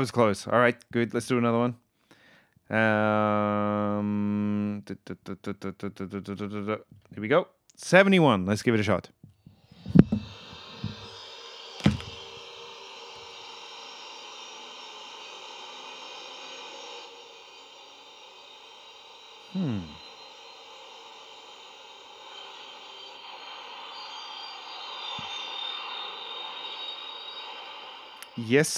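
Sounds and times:
speech: 0:00.0 - 0:01.8, 0:02.7 - 0:09.2, 0:28.4 - 0:28.7
futuristic spacecraft engine humming with high tonal whine: 0:09.9 - 0:28.7.

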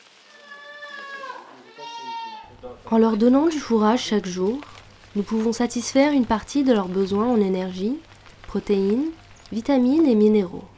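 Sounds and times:
goat bleating: 0:00.3 - 0:02.6
speech: 0:02.6 - 0:10.7.

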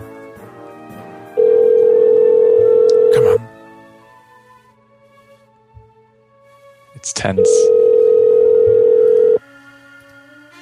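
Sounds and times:
telephone ringing tone on the line: 0:01.4 - 0:03.1, 0:07.4 - 0:09.4
speech: 0:07.2 - 0:07.8.

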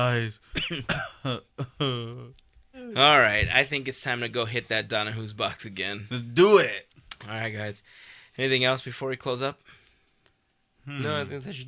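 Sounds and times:
speech: 0:00.0 - 0:09.8, 0:10.9 - 0:11.6
person coughing: 0:00.5 - 0:02.2.

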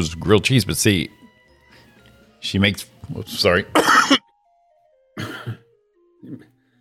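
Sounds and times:
speech: 0:00.0 - 0:01.2, 0:02.4 - 0:04.2
brief sharp cough: 0:03.8 - 0:04.2, 0:05.2 - 0:06.6
harsher double-pulsed throat clearing: 0:03.8 - 0:04.2, 0:05.2 - 0:06.6.

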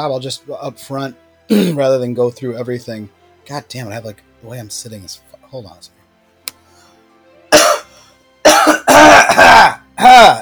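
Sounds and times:
speech: 0:00.0 - 0:06.0, 0:09.5 - 0:10.4
person coughing: 0:01.5 - 0:01.8, 0:07.5 - 0:07.9, 0:08.5 - 0:10.4
throat clearing: 0:01.5 - 0:01.8, 0:07.6 - 0:07.9, 0:08.5 - 0:10.4.

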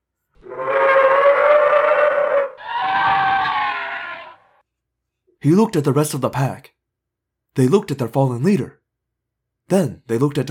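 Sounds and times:
dinosaur screeching a challenge cry: 0:00.4 - 0:04.6
speech: 0:05.4 - 0:06.8, 0:07.6 - 0:08.8, 0:09.7 - 0:10.4.

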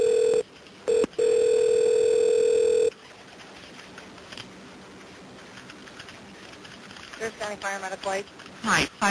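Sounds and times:
telephone line ringing during a call transfer: 0:00.0 - 0:02.9
speech: 0:07.5 - 0:09.0.

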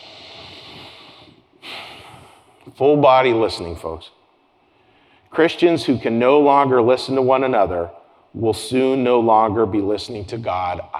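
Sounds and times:
person taking a big breath in: 0:00.0 - 0:02.6
speech: 0:02.7 - 0:04.2, 0:05.4 - 0:10.9.

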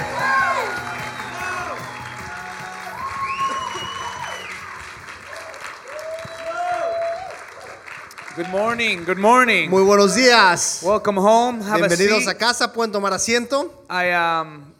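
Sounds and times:
scattered cheers and whoops from the audience: 0:00.0 - 0:08.6
audience applauding steadily: 0:00.0 - 0:10.7
speech: 0:08.4 - 0:14.7.

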